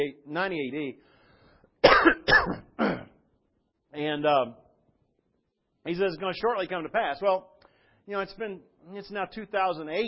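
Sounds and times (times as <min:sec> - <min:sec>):
speech: 0:00.0 - 0:01.1, 0:01.9 - 0:03.1, 0:03.9 - 0:04.6, 0:05.8 - 0:10.0
harsh throat clearing: 0:01.8 - 0:03.3.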